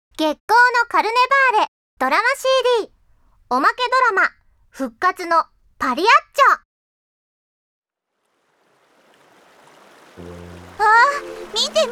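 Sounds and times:
speech: 0:00.2 - 0:06.6, 0:10.2 - 0:11.8
water rushing along a narrow dirty river: 0:08.3 - 0:11.8.

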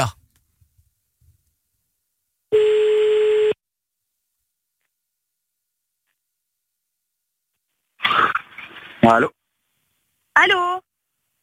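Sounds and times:
electronic telephone tone as a call is placed: 0:02.5 - 0:03.6
speech: 0:09.0 - 0:09.4, 0:10.4 - 0:10.8.

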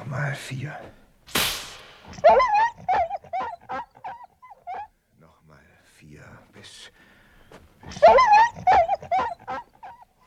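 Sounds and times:
speech: 0:00.1 - 0:01.5, 0:02.1 - 0:03.0
dog howling and whimpering: 0:02.1 - 0:04.9, 0:07.9 - 0:10.2.

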